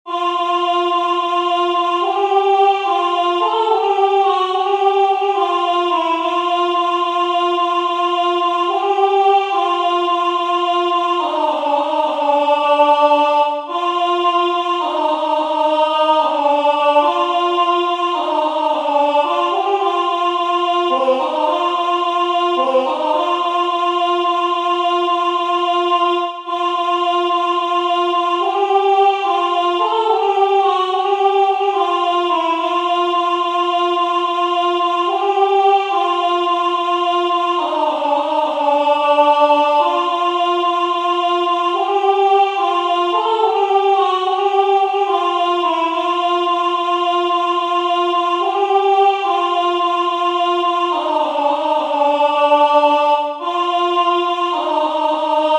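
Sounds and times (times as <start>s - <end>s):
alto voice singing a carol: 0.1s - 55.5s.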